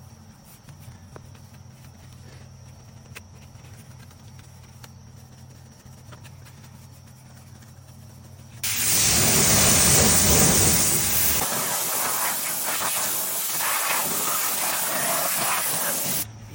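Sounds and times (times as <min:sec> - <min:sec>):
organic wheel and tire acid cleaner diluted four to one being sprayed: 0:08.6 - 0:16.3.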